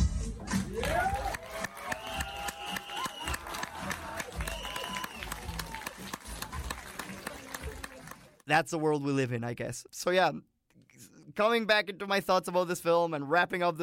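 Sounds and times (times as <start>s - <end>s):
crowd applause: 0.7s - 8.4s
speech: 8.5s - 10.5s, 11.4s - 13.8s.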